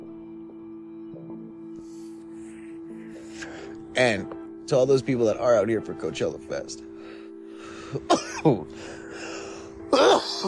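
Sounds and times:
speech: 4.0s - 6.9s, 7.9s - 9.0s
person coughing from smoking a cannabis vape cart: 8.0s - 8.7s, 9.9s - 10.4s
throat clearing: 8.0s - 8.7s, 10.0s - 10.4s.

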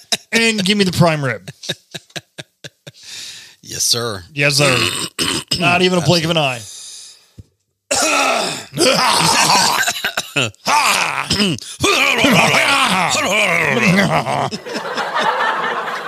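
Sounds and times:
man clearing his throat of phlegm at a restaurant table: 0.0s - 0.6s, 4.6s - 6.2s, 7.9s - 14.6s
laughter: 0.0s - 3.2s, 11.8s - 16.0s
speech: 0.3s - 2.0s, 3.7s - 6.8s, 8.1s - 15.4s
man groaning grunts while clearing phlegm: 4.6s - 6.4s, 7.9s - 14.6s.

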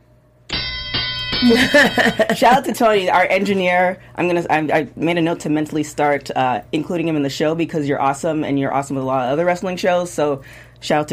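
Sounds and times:
bright metallic bell struck and ringing: 0.5s - 2.9s
speech: 1.4s - 11.1s.

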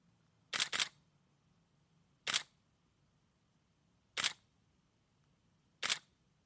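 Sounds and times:
Canon 5D Mark III DSLR camera shutter clicking: 0.5s - 1.0s, 2.3s - 2.5s, 4.2s - 4.4s, 5.8s - 6.1s.

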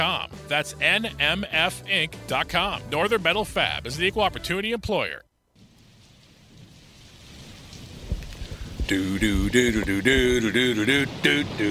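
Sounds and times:
speech: 0.0s - 5.3s, 8.9s - 11.6s
steady rain during a thunderstorm: 5.6s - 11.6s
low rumble of thunder: 5.9s - 11.6s.

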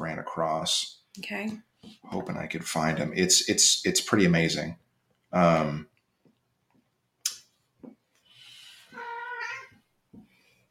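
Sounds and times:
speech: 0.4s - 5.9s
cat meowing: 8.9s - 9.8s.

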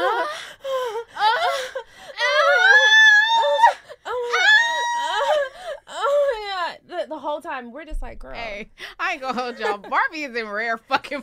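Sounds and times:
person imitating orgasmic moaning and screaming of a woman getting tattooed: 1.2s - 6.2s
speech: 7.5s - 11.2s.

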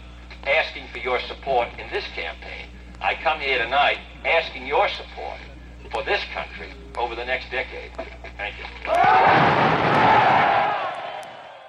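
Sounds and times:
speech: 0.4s - 10.5s
large crowd cheering after speech: 8.9s - 11.6s.

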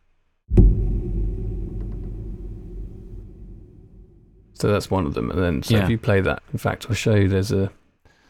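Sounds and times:
piano sustain pedal thump heard from inside the piano: 0.5s - 4.6s
speech: 4.6s - 7.8s.

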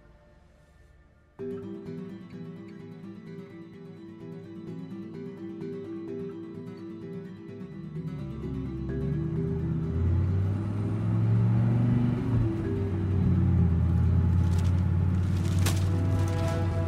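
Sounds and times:
car driving down a road with low engine rumble: 8.2s - 16.8s.

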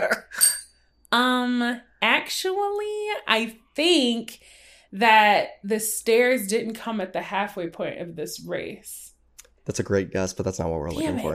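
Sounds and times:
speech: 0.0s - 0.3s, 1.1s - 11.3s
bell struck with a bright ding: 0.4s - 0.7s.

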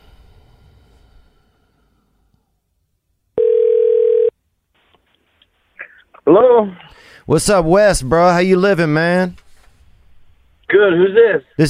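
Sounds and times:
telephone ringing tone while placing a call: 3.4s - 4.4s
speech: 6.3s - 9.4s, 10.8s - 11.6s.

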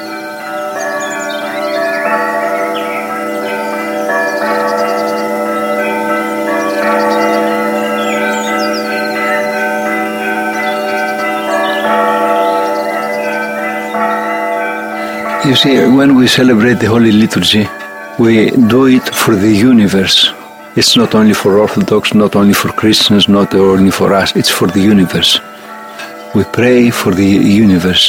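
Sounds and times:
distant monastery church bells ringing: 0.0s - 28.0s
faint birds chirping: 0.0s - 28.0s
speech: 15.5s - 25.5s, 26.3s - 28.0s.

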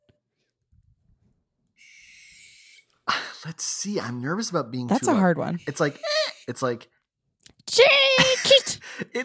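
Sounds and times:
barn owl screeching: 1.8s - 2.9s
speech: 3.4s - 7.0s, 7.7s - 9.2s.

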